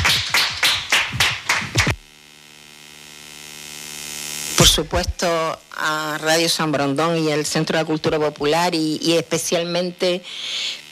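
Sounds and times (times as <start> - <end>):
audience applauding the guests: 0.0 - 2.0
steady low electrical hum: 0.0 - 10.9
speech: 4.7 - 10.8.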